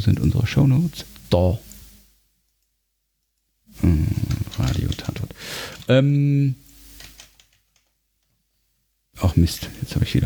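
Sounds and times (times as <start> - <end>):
speech: 0.0 - 1.7, 3.8 - 5.1, 5.9 - 6.6, 9.2 - 10.2
typing on a keyboard: 7.0 - 8.0.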